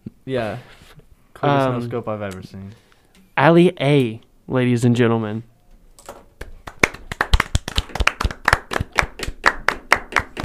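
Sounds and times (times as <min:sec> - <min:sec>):
speech: 0:00.3 - 0:00.8, 0:01.4 - 0:02.8, 0:03.4 - 0:05.5
hand clapping: 0:06.4 - 0:10.4.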